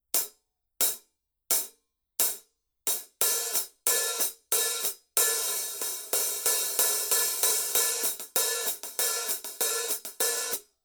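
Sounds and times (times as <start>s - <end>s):
Paiste Color Sound 900 Black Sound Edge hi-hat: 2.9s - 10.6s.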